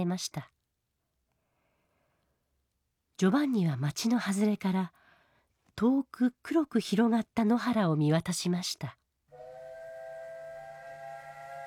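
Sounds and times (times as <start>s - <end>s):
speech: 0.0s - 0.6s, 3.2s - 5.0s, 5.8s - 9.0s
steam train whistle: 9.3s - 11.6s.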